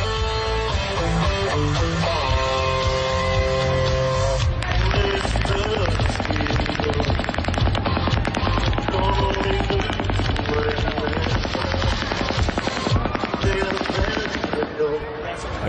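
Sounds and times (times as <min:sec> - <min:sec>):
crowd noise at a packed open-air country western concert: 0:00.0 - 0:15.6
faint music at an open-air country western concert: 0:00.0 - 0:15.6
rapid automatic machine gun fire outdoors at an open-air concert: 0:04.7 - 0:14.9.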